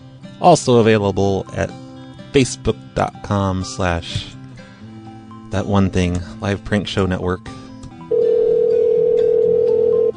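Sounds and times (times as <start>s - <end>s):
speech: 0.4s - 4.4s, 5.5s - 7.6s
telephone ringing with a steady electronic tone: 8.1s - 10.1s.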